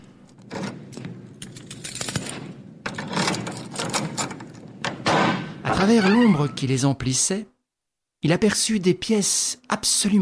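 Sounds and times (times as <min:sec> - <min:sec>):
keys scraping and rattling as they are tried in a lock: 0:00.3 - 0:04.8
speech: 0:05.7 - 0:07.6, 0:08.2 - 0:10.1.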